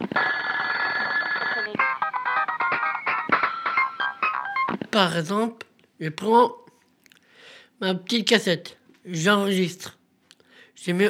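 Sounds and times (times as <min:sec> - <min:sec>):
telephone ringing with electronic trill and repeated tonal bursts: 0:00.0 - 0:04.8
speech: 0:05.0 - 0:06.6, 0:07.8 - 0:10.0, 0:10.8 - 0:11.0.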